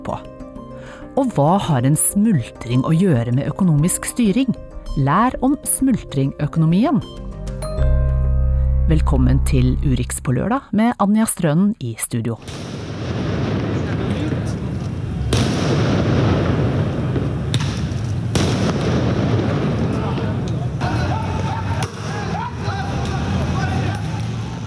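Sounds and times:
speech: 0:00.0 - 0:07.9, 0:08.9 - 0:12.7
firework bangs thrown by protesters at police in Beirut, Lebanon: 0:12.5 - 0:20.9
roar of a large crowd of protesters at night in Beirut: 0:19.8 - 0:24.6
protesters shouting: 0:20.8 - 0:24.6.

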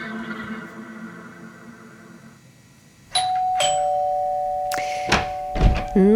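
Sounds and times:
doorbell chiming: 0:03.1 - 0:06.0.

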